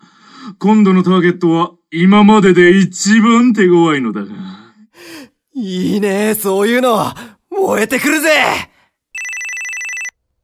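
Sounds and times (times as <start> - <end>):
speech: 0.5 - 8.7
phone ringing with a trilling electronic tone: 9.2 - 10.2.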